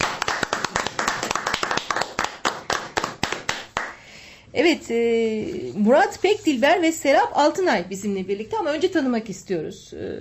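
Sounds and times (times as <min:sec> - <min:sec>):
small group of people clapping hands in applause: 0:00.0 - 0:04.0
speech: 0:04.6 - 0:10.1.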